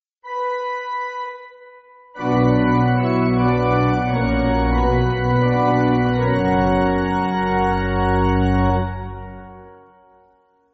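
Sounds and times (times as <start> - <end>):
pipe organ amen cadence: 2.2 - 10.3.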